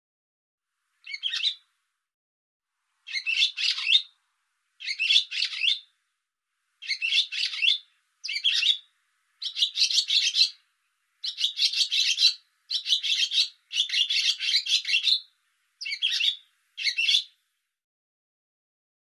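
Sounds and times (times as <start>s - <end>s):
bird uttering rapid scratchy high-pitched chatter: 1.0s - 1.6s, 3.1s - 4.1s, 4.8s - 5.9s, 6.8s - 10.6s, 11.2s - 17.3s.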